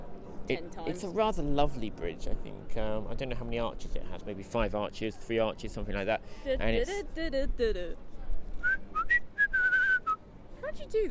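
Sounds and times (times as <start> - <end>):
speech: 0.5 - 9.0, 10.8 - 11.0
two people whistling out of tune with each other: 8.6 - 10.2.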